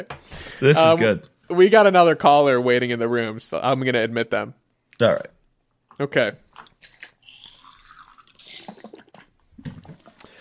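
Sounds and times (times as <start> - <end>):
speech: 0.0 - 5.4, 6.0 - 6.7
soft crackly mouth sounds: 4.9 - 10.4
slurping and swallowing while sipping a drink against the microphone: 5.9 - 10.4.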